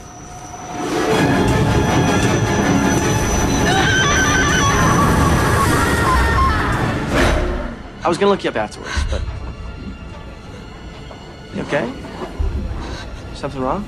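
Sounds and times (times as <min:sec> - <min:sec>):
high metallic train wheel squeals: 0:00.0 - 0:07.2
train hurtling along the tracks: 0:00.0 - 0:08.0, 0:09.3 - 0:13.8
speech: 0:08.1 - 0:09.3, 0:11.6 - 0:12.0, 0:13.4 - 0:13.8.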